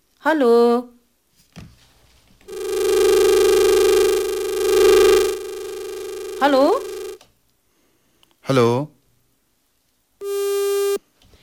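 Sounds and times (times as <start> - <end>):
speech: 0.2 - 0.9, 6.4 - 6.7, 8.5 - 8.9
telephone busy tone as a call fails to connect: 2.5 - 7.2, 10.2 - 11.0.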